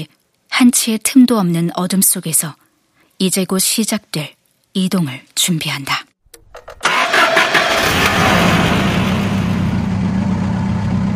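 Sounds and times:
speech: 0.0s - 2.6s, 3.2s - 6.0s
large engine cranking and starting then idling: 6.6s - 11.0s.

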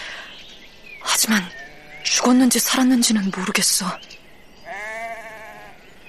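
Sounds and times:
speech: 1.2s - 4.2s
lamb bleating: 4.7s - 5.8s.

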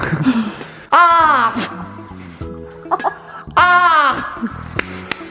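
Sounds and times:
speech: 0.1s - 1.8s
person imitating crow caws: 0.9s - 2.0s, 3.5s - 4.4s
laughter: 2.8s - 4.6s.

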